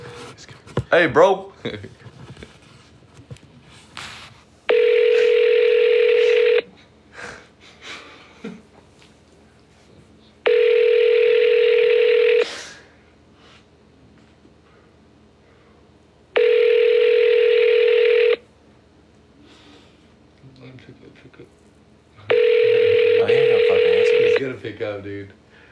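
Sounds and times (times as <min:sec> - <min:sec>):
speech: 0:00.9 - 0:02.1
phone ringback tone as a call is placed: 0:04.7 - 0:06.7, 0:10.5 - 0:12.4, 0:16.4 - 0:18.4, 0:22.3 - 0:24.4.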